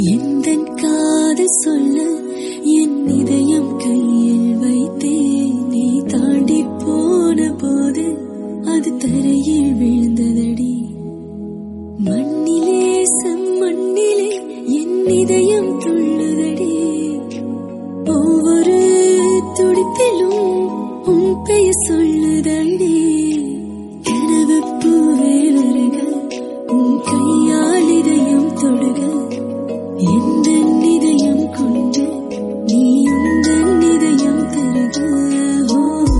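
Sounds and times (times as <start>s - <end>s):
woman singing a Tamil song: 0.0s - 11.3s, 11.9s - 36.1s.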